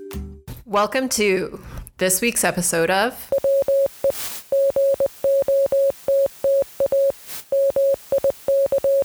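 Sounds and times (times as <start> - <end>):
speech: 0.7 - 3.3
Morse code beeps from a Morse code generator: 3.4 - 9.0
bursts of hiss: 3.4 - 9.0.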